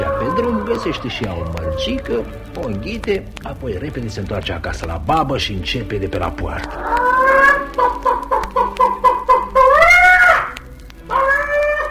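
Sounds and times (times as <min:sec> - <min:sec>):
hen cackling: 0:00.0 - 0:03.0, 0:06.6 - 0:11.8
speech: 0:00.4 - 0:07.1.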